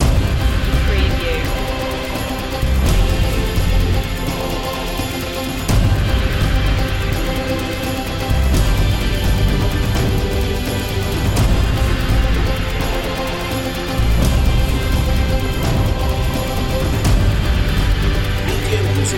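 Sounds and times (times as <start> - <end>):
background choir singing: 0.0 - 19.1.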